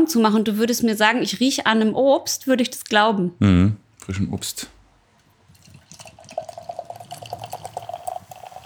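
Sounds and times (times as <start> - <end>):
speech: 0.0 - 4.8
beer bubbles crackling and popping: 5.4 - 8.6
golden slightly cloudy beer pouring into a glass: 5.4 - 8.6.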